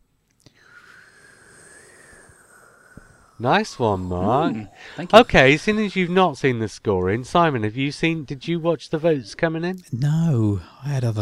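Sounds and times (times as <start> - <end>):
voice imitating tumbleweed wind noise: 0.9 - 6.2
speech: 3.4 - 11.1.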